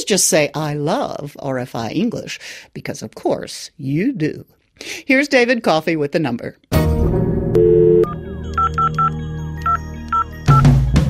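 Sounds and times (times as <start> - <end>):
speech: 0.1 - 7.0
steady telephone tone: 7.6 - 11.0
telephone keypad dialing tones: 7.6 - 11.0.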